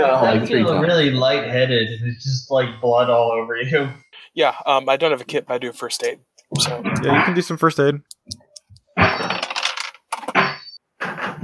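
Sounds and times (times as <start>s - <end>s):
speech: 0.0s - 8.4s
dice clattering across a hard surface: 9.2s - 10.3s.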